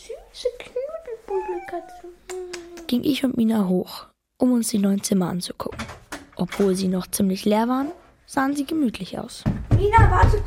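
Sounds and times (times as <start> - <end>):
cat on a sofa mewing while being petted: 1.3 - 2.3
speech: 1.7 - 2.3, 2.9 - 10.4.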